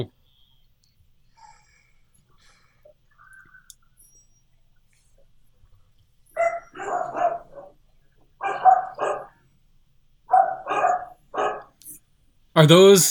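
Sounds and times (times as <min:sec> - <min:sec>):
dogs barking: 0:06.4 - 0:07.7, 0:08.4 - 0:09.3, 0:10.3 - 0:11.7
speech: 0:12.6 - 0:13.0.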